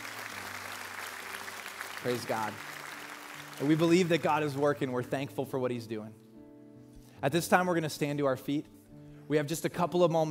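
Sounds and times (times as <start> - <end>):
crowd clapping: 0.0 - 5.1
speech: 2.0 - 2.7, 3.6 - 6.2, 7.2 - 8.7, 9.3 - 10.3.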